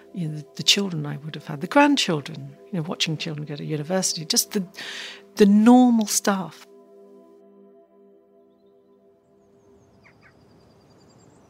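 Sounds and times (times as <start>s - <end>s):
speech: 0.2s - 6.7s
bird chirps: 8.4s - 11.4s.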